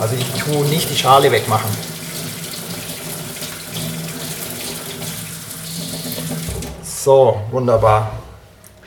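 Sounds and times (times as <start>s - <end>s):
speech: 0.0s - 1.9s, 7.0s - 8.2s
running tap water splashing into a sink: 0.0s - 6.8s.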